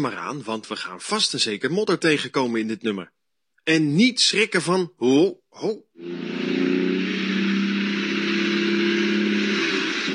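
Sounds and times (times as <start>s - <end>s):
speech: 0.0s - 6.3s
milk tanker truck engine driving past: 6.0s - 10.1s.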